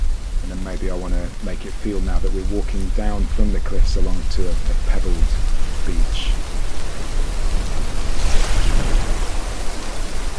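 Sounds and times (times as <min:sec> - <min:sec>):
light rain: 0:00.0 - 0:10.3
low rumble: 0:00.0 - 0:10.3
speech: 0:00.6 - 0:06.5.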